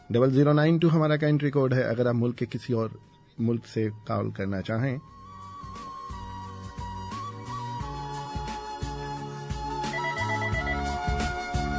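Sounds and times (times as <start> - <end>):
speech: 0.1 - 5.2
phone musical ringtone for an incoming call: 9.7 - 11.6.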